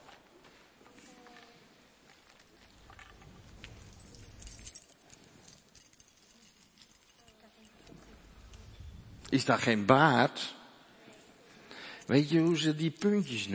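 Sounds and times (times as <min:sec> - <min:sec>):
bunch of metal keys rattling and jingling: 0:02.1 - 0:09.4, 0:12.0 - 0:13.5
speech: 0:09.3 - 0:10.6, 0:12.1 - 0:13.5.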